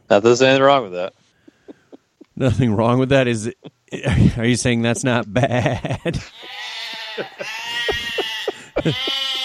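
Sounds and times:
speech: 0:00.1 - 0:01.2, 0:02.4 - 0:08.0, 0:08.8 - 0:09.3
laughter: 0:01.5 - 0:02.8, 0:03.5 - 0:09.4
goat bleating: 0:06.2 - 0:09.4.

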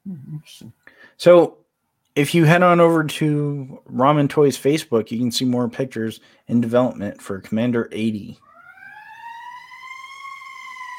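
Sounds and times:
speech: 0:00.4 - 0:01.6, 0:02.2 - 0:08.4
siren wailing outside: 0:08.4 - 0:10.9.

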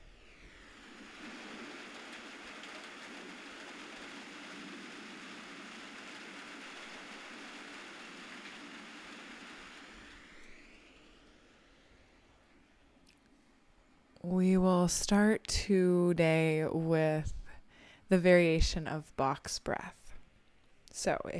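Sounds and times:
steady rain falling: 0:00.8 - 0:10.3
speech: 0:14.2 - 0:17.4, 0:18.1 - 0:20.0, 0:21.0 - 0:21.3.

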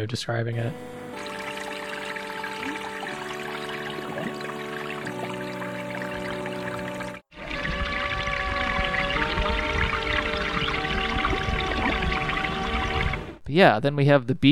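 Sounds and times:
speech: 0:00.0 - 0:01.3, 0:13.5 - 0:14.5
sustained humming tones: 0:00.5 - 0:13.4
rushing watery river-like flow: 0:00.8 - 0:13.4.

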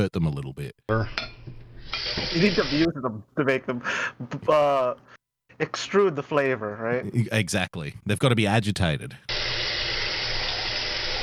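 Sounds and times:
speech: 0:00.0 - 0:09.4
hot water pouring into a cup of noodles: 0:09.3 - 0:11.2.

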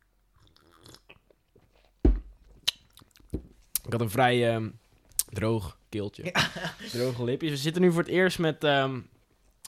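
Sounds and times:
person sipping cola with vodka from a glass and swallowing: 0:00.4 - 0:01.4
speech: 0:03.9 - 0:09.1
laughter: 0:06.3 - 0:07.2.

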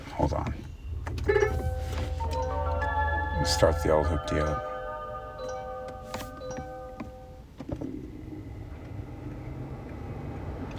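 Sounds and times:
Kia Optima hybrid car running hum: 0:00.0 - 0:04.2, 0:05.8 - 0:10.7
speech: 0:00.2 - 0:00.6, 0:03.4 - 0:04.7
electronic chime tones of a Kia Optima hybrid car: 0:01.2 - 0:07.4.

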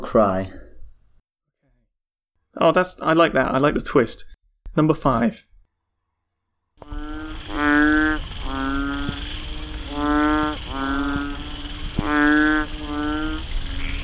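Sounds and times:
speech: 0:00.0 - 0:00.6, 0:02.6 - 0:05.5
painted frog Kaloula pulchra giving buzzy moaning calls: 0:06.8 - 0:14.0
steady hiss: 0:06.8 - 0:14.0.

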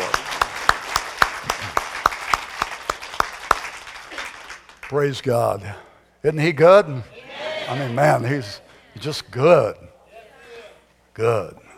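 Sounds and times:
church audience applauding: 0:00.0 - 0:05.0
speech: 0:04.9 - 0:10.0, 0:11.2 - 0:11.6.

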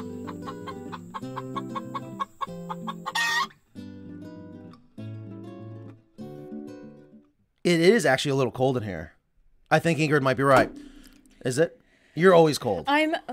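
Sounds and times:
chickens clucking: 0:00.0 - 0:03.6
speech: 0:07.7 - 0:13.3.

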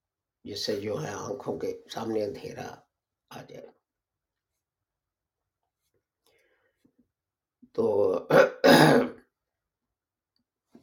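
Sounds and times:
speech: 0:00.4 - 0:03.8, 0:07.8 - 0:08.5
one person coughing and clearing throat: 0:08.3 - 0:09.3.

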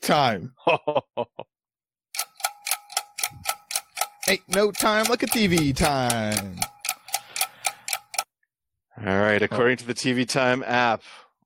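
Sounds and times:
speech: 0:00.1 - 0:01.3, 0:04.3 - 0:06.7, 0:09.0 - 0:11.2
millennium clock ticking: 0:02.1 - 0:08.3.

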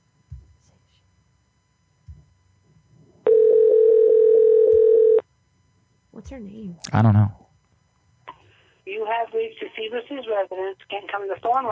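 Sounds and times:
telephone dial tone while placing a call: 0:03.3 - 0:05.2
speech: 0:06.3 - 0:07.4, 0:08.9 - 0:11.6.

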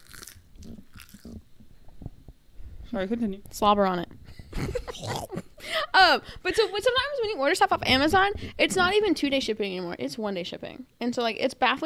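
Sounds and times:
person biting and chewing crispy air-fried fries: 0:00.0 - 0:01.4
speech: 0:02.9 - 0:05.4, 0:06.0 - 0:11.8.

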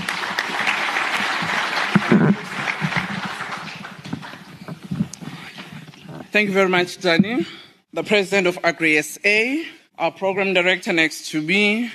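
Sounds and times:
crowd at an agricultural congress applauding: 0:00.0 - 0:05.0
speech: 0:06.3 - 0:11.9.

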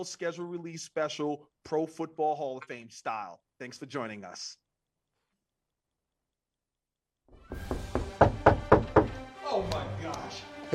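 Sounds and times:
speech: 0:00.0 - 0:04.6, 0:09.6 - 0:10.7
firm knocking on a door: 0:07.4 - 0:09.3.

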